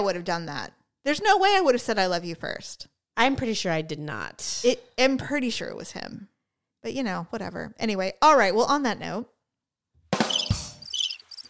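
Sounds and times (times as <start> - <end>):
speech: 0.0 - 9.3
cricket chirping sound effect: 10.3 - 11.4.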